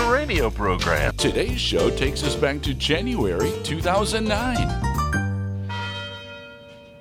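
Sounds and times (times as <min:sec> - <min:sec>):
speech: 0:00.3 - 0:05.0
university tower bell chimes ringing: 0:04.9 - 0:06.9.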